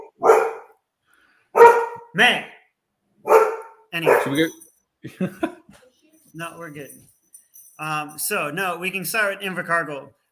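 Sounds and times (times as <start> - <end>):
pet dog barking: 0.0 - 0.8, 1.5 - 2.2, 3.2 - 4.6
speech: 2.2 - 2.6, 3.9 - 7.1, 7.8 - 10.3
laughter: 5.1 - 5.8.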